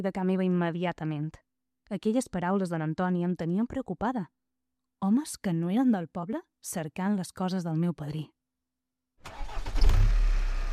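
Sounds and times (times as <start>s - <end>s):
speech: 0.0s - 4.4s, 5.0s - 8.4s
car engine cranking in a parking garage: 9.2s - 10.7s.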